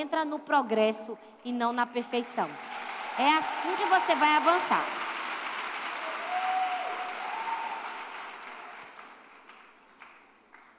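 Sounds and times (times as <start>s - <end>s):
speech: 0.0s - 5.0s
audience applause: 2.5s - 10.7s.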